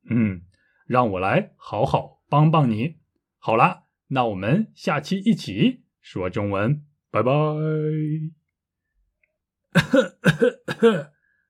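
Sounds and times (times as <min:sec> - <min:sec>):
speech: 0:00.1 - 0:08.4, 0:09.7 - 0:11.1
rough raspy coughs: 0:09.7 - 0:11.2.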